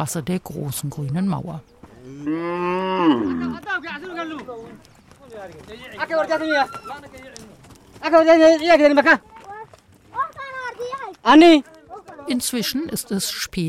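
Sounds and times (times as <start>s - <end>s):
speech: 0.0s - 9.3s, 11.2s - 11.7s, 12.3s - 13.6s
faint shuffle of hooves: 1.4s - 13.4s
cattle lowing at a canal: 2.0s - 3.7s.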